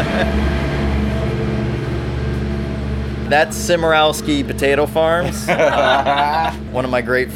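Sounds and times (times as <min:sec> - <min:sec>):
laughter: 0:00.0 - 0:00.3, 0:05.2 - 0:06.6
speech: 0:00.0 - 0:00.6, 0:03.3 - 0:07.3
large potato farm tractor diesel engine droning: 0:00.0 - 0:07.3.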